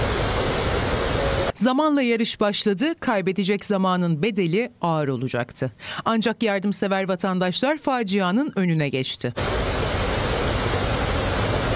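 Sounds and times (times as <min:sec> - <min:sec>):
rushing water of a waterfall in the Çatak district of Van, Turkey: 0:00.0 - 0:01.5, 0:09.4 - 0:11.7
speech: 0:01.6 - 0:09.8.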